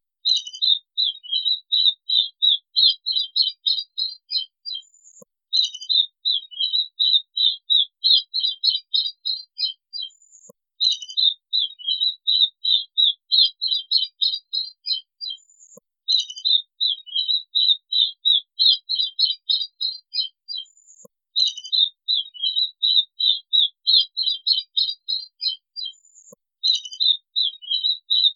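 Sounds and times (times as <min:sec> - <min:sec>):
white-collared swift singing: 0:00.2 - 0:28.3.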